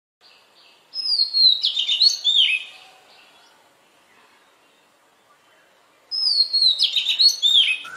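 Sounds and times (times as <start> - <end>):
Oriental magpie-robin singing: 1.0 - 3.3, 6.1 - 7.9.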